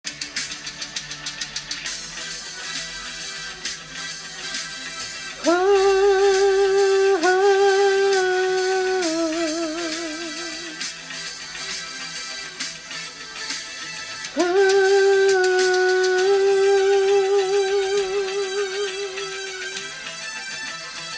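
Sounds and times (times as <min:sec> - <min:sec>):
person vocalizing: 0:05.4 - 0:10.9, 0:14.3 - 0:19.9.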